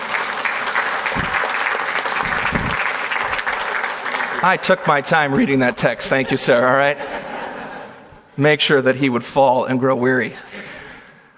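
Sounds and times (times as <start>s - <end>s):
crowd applauding: 0.0s - 5.3s
speech: 4.4s - 7.3s, 8.4s - 10.7s
laughter: 5.4s - 8.2s.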